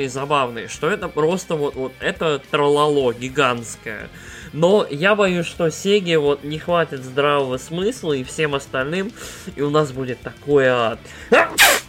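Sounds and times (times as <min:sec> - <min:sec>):
speech: 0:00.0 - 0:11.7
person sneezing: 0:11.3 - 0:11.8.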